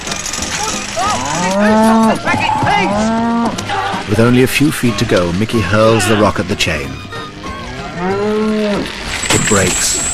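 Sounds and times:
cow mooing: 1.1 - 3.6, 7.7 - 9.0
speech: 1.6 - 7.2, 9.5 - 10.0.

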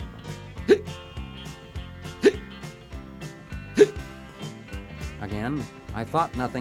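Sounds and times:
music: 0.0 - 6.5
hiccups: 0.6 - 1.0, 2.2 - 2.5, 3.7 - 4.0
speech: 0.7 - 0.9, 5.4 - 6.5.

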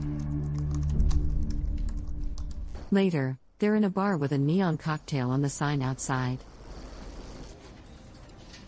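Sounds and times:
typing on a laptop keyboard: 0.1 - 2.6
speech: 2.9 - 6.5.

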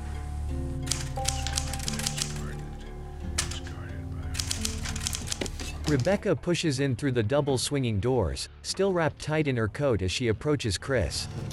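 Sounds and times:
typing in a saloon: 0.8 - 2.6, 3.4 - 3.7, 4.4 - 5.6
speech: 5.9 - 11.5.

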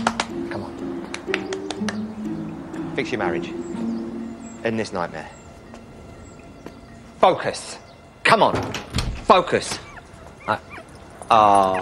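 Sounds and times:
speech: 3.0 - 3.6, 4.6 - 5.4, 7.2 - 9.8, 10.5 - 10.7, 11.3 - 11.7
Great Dane puppy yipping: 9.6 - 11.7.

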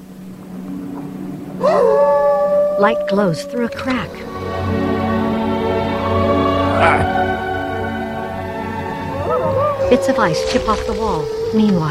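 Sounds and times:
steady low hum: 0.0 - 11.8
speech: 2.8 - 4.8, 6.8 - 7.3, 9.9 - 11.8.

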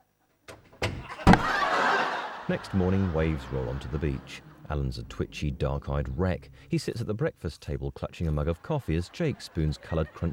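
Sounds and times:
door shutting: 0.5 - 1.7
toilet lid dropping: 0.8 - 1.6
laughter: 1.0 - 5.4, 8.2 - 10.3
speech: 2.5 - 10.3.

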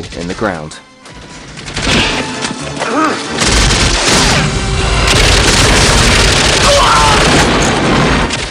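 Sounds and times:
scattered gunfire: 1.5 - 2.4, 3.3 - 8.4
crashing debris: 1.6 - 8.4
heavy booming explosions rocking a compound: 3.3 - 8.4.

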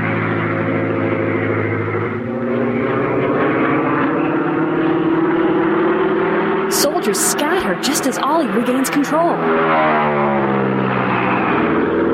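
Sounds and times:
propeller airplane engine roaring in a dive: 0.0 - 12.1
speech: 7.1 - 10.8.

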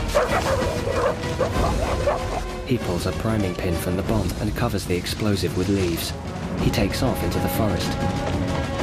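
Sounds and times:
pursuing dogs barking and yipping in a forest: 0.1 - 2.5
speech: 2.7 - 8.7.

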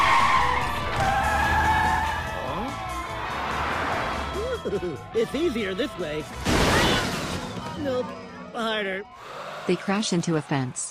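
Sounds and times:
car tires squealing in a long loud skid: 0.0 - 4.4
speech: 4.7 - 6.6, 7.8 - 10.9.

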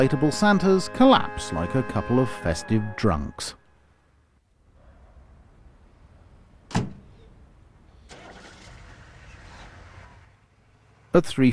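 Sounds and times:
speech: 0.0 - 3.6, 11.1 - 11.5
sharp thud: 6.7 - 7.1
car engine starting up and rumbling: 8.0 - 11.1.

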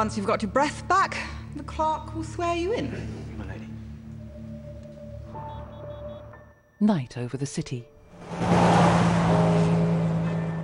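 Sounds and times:
speech: 0.0 - 3.3, 6.8 - 8.5
Land Rover engine drone driving along a dual carriageway: 8.1 - 10.6
road noise on a dual carriageway: 8.1 - 10.6.

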